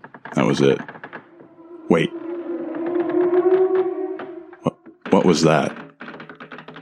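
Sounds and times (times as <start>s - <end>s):
speech: 0.3s - 0.9s, 1.9s - 2.2s, 5.2s - 5.8s
long drawn-out echoey distant moan: 1.2s - 4.9s.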